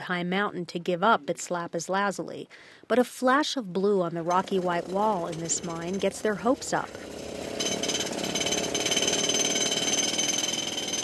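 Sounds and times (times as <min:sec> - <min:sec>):
speech: 0:00.0 - 0:07.2
aging rock drill hammering into stone: 0:04.3 - 0:11.0.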